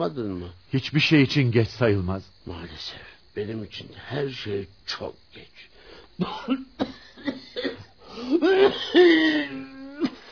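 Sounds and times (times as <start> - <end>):
speech: 0.0 - 7.5, 8.2 - 9.7
harsh wheezy coughing from an ailing person: 6.2 - 10.3.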